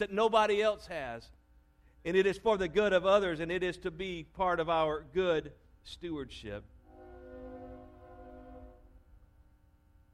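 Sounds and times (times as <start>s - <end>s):
speech: 0.0s - 1.4s, 2.0s - 6.8s
train horn blowing a long loud chord: 6.8s - 9.2s.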